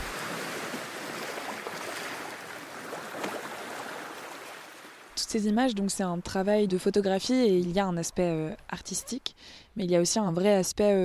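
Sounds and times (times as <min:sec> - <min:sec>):
surf on a beach near La Rochelle: 0:00.0 - 0:05.2
speech: 0:05.3 - 0:11.0.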